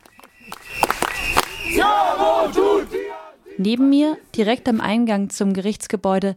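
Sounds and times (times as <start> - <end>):
sharp claps or bangs: 0.0 - 1.8
large counter-demonstration crowd chanting a slogan beside tram tracks: 0.6 - 5.1
speech: 3.6 - 6.3.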